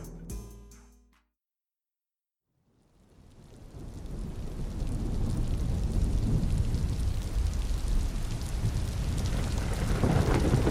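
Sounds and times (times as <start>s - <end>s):
steady heavy rainfall: 3.0s - 10.6s
deep rolling thunder: 3.4s - 10.6s.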